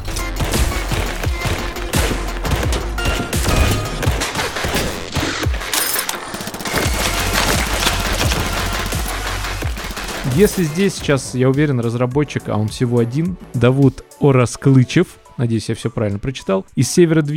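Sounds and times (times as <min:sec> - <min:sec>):
rapid automatic gunfire from an early-development shooter video game made in Unity: 0:00.0 - 0:11.0
speech: 0:10.4 - 0:17.3.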